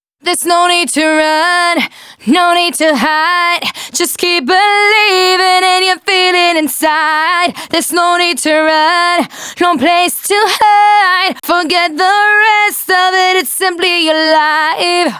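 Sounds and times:
dry female vocals: 0:00.2 - 0:15.1.

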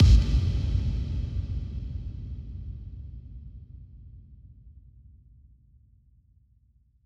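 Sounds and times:
bass drum kick with reverb effect: 0:00.0 - 0:04.2.

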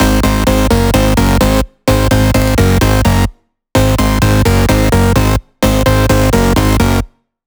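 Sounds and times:
flatbeat melody: 0:00.0 - 0:07.0.

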